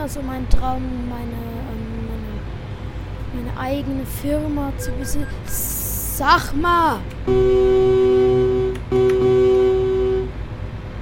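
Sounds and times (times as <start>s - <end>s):
speech: 0.0s - 1.8s, 3.3s - 7.9s
vehicle racing up behind a truck blaring its horn: 7.3s - 10.4s.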